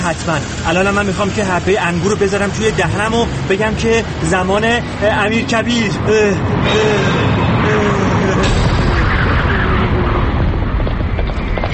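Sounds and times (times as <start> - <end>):
heavy rumbling noise: 0.0 - 11.7
speech: 0.1 - 7.4
hoofbeats of a horse as a rider approaches: 10.5 - 11.7.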